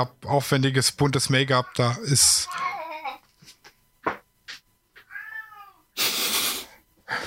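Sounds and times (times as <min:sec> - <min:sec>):
speech: 0:00.0 - 0:02.8
cat meowing: 0:05.0 - 0:05.8
loud burst of rushing hiss-like noise: 0:06.0 - 0:07.2.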